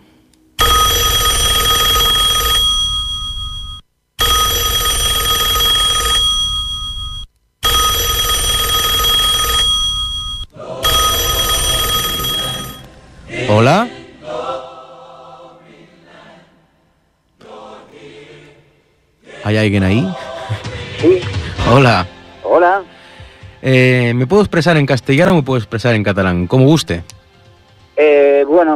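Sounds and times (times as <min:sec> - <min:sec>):
old telephone bell ringing: 0:00.6 - 0:12.9
speech: 0:19.6 - 0:20.2, 0:21.0 - 0:22.8, 0:23.6 - 0:27.1, 0:28.1 - 0:28.7.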